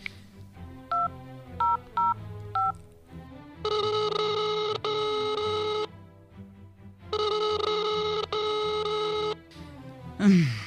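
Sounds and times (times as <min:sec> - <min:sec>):
telephone keypad beeps: 0:00.9 - 0:02.8, 0:03.7 - 0:05.9, 0:07.1 - 0:09.4
telephone electronic ringback tones: 0:03.6 - 0:05.9, 0:07.1 - 0:09.4.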